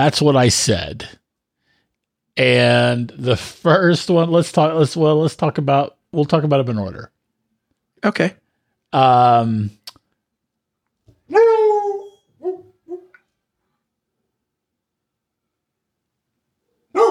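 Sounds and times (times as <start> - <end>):
speech: 0.0 - 1.2, 2.4 - 7.1, 8.0 - 9.8
dog barking outside: 11.3 - 13.1, 16.9 - 17.0.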